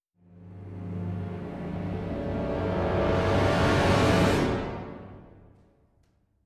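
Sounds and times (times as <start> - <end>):
orchestra playing: 0.6 - 5.5.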